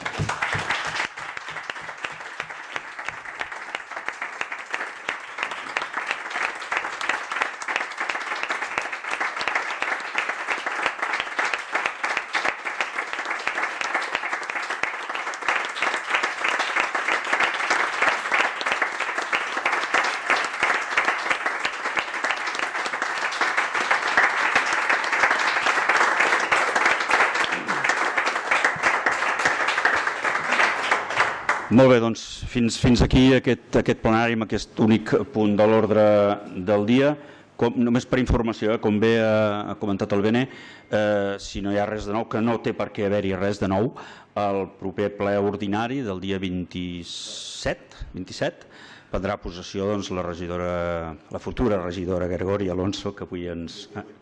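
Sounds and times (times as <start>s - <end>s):
sizable crowd applauding at a council plenary session: 0.0s - 32.0s
speech: 31.7s - 54.1s.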